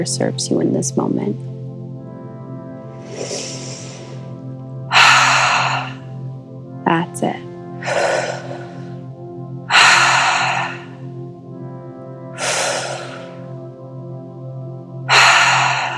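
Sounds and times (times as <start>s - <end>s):
speech: 0.0s - 1.5s
deep breathing during a breathwork exercise: 2.8s - 6.5s, 7.8s - 13.7s, 15.1s - 15.9s.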